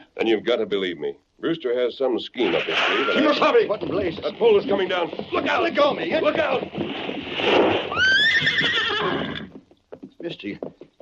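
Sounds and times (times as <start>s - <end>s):
speech: 0.2s - 7.7s, 10.2s - 10.8s
horse whinnying: 2.5s - 9.7s.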